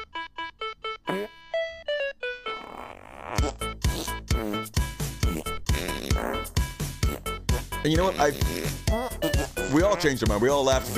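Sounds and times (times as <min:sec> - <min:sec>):
bouncy musical tune built from buzzy fart sounds: 0:01.1 - 0:01.4, 0:02.4 - 0:10.2
speech: 0:07.8 - 0:08.8, 0:09.7 - 0:10.9.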